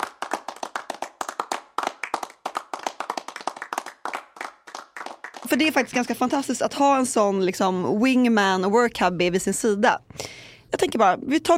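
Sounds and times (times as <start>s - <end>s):
small group applauding with rapid sharp claps: 0.0s - 6.4s
speech: 5.5s - 10.1s, 11.0s - 11.5s.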